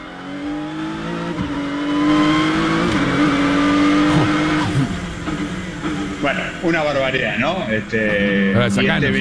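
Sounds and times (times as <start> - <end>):
gasoline race car engine howling through gear shifts: 0.0 - 9.1
speech: 6.7 - 9.1.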